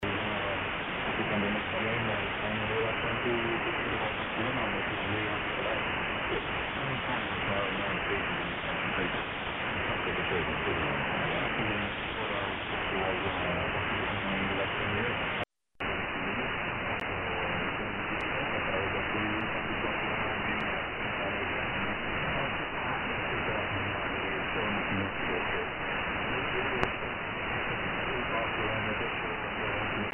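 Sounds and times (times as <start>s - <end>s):
AM radio signal at 21470 kHz with 6 kHz bandwidth: 0.0s - 30.1s.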